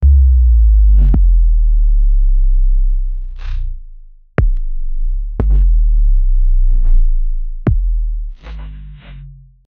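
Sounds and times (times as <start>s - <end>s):
movie trailer bass drop: 0.0s - 9.7s.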